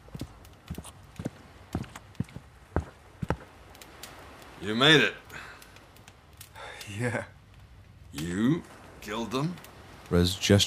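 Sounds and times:
footsteps on a firm surface: 0:00.0 - 0:03.6
speech: 0:04.6 - 0:05.2, 0:07.0 - 0:07.4, 0:08.1 - 0:10.6.

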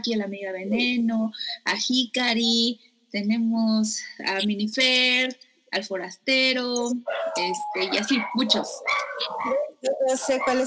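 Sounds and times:
speech: 0:00.0 - 0:10.6
dogs barking: 0:07.0 - 0:10.6.

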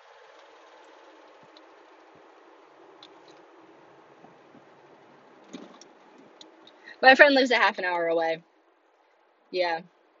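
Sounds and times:
rough old car engine drone: 0:00.0 - 0:07.1
brief rattle in an old car: 0:05.4 - 0:06.3
speech: 0:07.0 - 0:08.5, 0:09.5 - 0:10.0.

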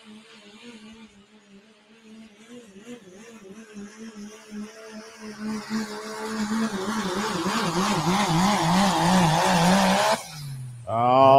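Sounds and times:
farm truck engine revving: 0:00.0 - 0:11.3.

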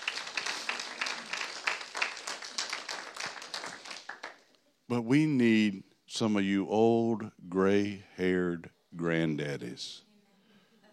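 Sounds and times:
audience applauding college students: 0:00.0 - 0:04.6
speech: 0:04.9 - 0:10.1.

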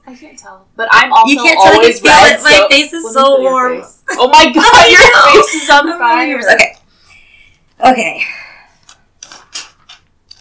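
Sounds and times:
speech: 0:00.1 - 0:06.8, 0:07.8 - 0:08.4
paper rustling: 0:08.8 - 0:10.4.

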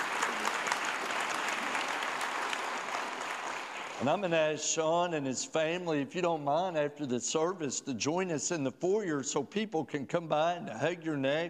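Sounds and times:
congregation applauding: 0:00.0 - 0:04.3
speech: 0:04.0 - 0:11.4.

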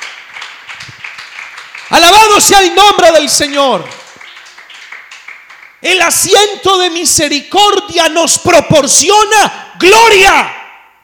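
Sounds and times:
crowd applauding: 0:00.0 - 0:05.9
speech: 0:01.9 - 0:04.0, 0:05.8 - 0:10.6.

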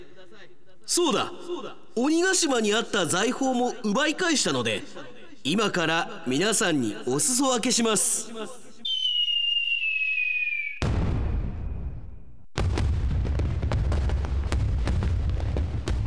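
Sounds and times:
speech: 0:00.3 - 0:08.6
firework whistling as it climbs: 0:08.8 - 0:10.9
firework bursting with a loud boom: 0:10.8 - 0:16.0
dense crackle of popping firework sparks: 0:12.6 - 0:16.0.

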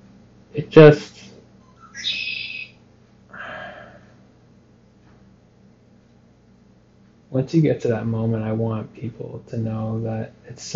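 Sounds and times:
speech: 0:00.5 - 0:01.2, 0:07.4 - 0:10.7
bird chirping in high warbling phrases: 0:01.6 - 0:02.8
breathy vocal burst: 0:03.3 - 0:04.2.

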